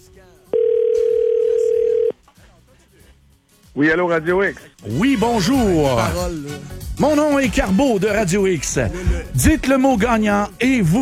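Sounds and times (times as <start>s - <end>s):
telephone ringing on a call to a radio station: 0.5s - 2.1s
speech: 3.8s - 10.9s.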